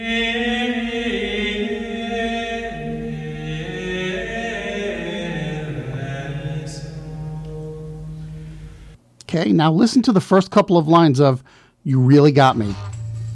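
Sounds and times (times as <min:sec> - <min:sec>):
religious choral chant: 0:00.0 - 0:09.0
speech: 0:09.3 - 0:12.9.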